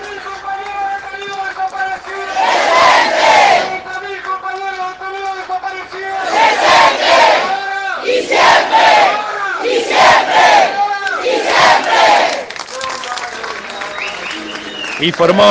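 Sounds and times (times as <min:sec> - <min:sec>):
clapping: 0:00.0 - 0:02.4, 0:03.7 - 0:06.2, 0:11.0 - 0:11.2, 0:11.8 - 0:15.4
large outdoor crowd shouting and cheering outside courthouse: 0:00.0 - 0:15.4
speech: 0:15.0 - 0:15.4.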